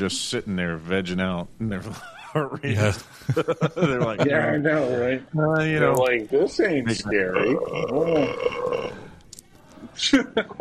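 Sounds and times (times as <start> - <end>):
speech: 0.0 - 8.8, 10.0 - 10.5
quiet noise: 0.0 - 10.5
laughter: 1.9 - 4.6, 10.0 - 10.5
massive deep gurgling burp: 7.3 - 9.1.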